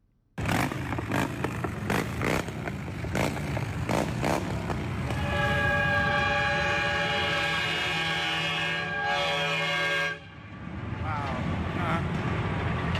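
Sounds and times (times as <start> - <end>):
passing motorcycle engines rumbling: 0.4 - 12.9
truck horn blaring in a motorcycle procession: 5.0 - 10.5.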